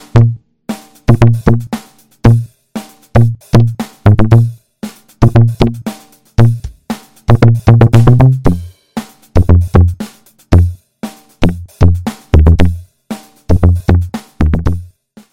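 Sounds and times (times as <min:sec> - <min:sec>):
muted bass: 0:00.0 - 0:00.4, 0:01.1 - 0:01.7, 0:03.2 - 0:04.6, 0:05.2 - 0:05.8, 0:06.4 - 0:06.6, 0:07.3 - 0:08.6, 0:09.4 - 0:10.0, 0:10.6 - 0:10.8, 0:11.4 - 0:12.8, 0:13.5 - 0:14.8.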